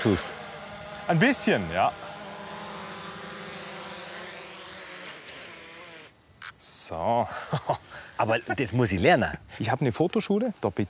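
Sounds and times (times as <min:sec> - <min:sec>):
speech: 0:00.0 - 0:00.4, 0:01.1 - 0:02.0, 0:06.6 - 0:10.8
small multirotor camera drone propellers buzzing: 0:00.0 - 0:06.6
laughter: 0:07.3 - 0:08.7.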